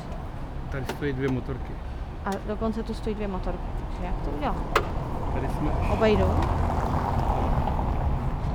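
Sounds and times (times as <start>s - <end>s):
speech: 0.7s - 6.8s
car passing by along a street: 4.6s - 8.5s.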